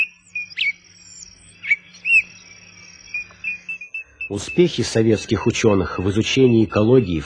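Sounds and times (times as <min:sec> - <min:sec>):
birds calling in a dense East African forest: 0:00.0 - 0:07.2
steady high insect-like trill: 0:00.0 - 0:07.2
speech: 0:04.3 - 0:07.2.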